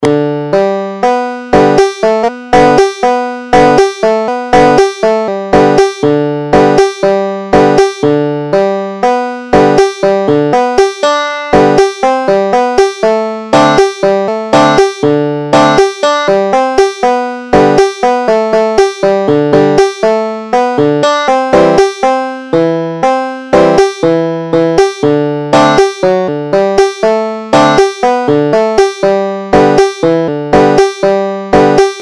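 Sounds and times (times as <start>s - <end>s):
banjo playing a folk tune: 0.0s - 32.0s.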